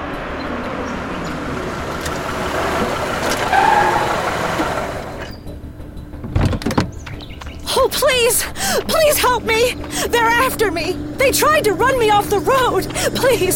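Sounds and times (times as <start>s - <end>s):
car engine rumbling: 0.0s - 13.5s
speech: 8.2s - 13.5s.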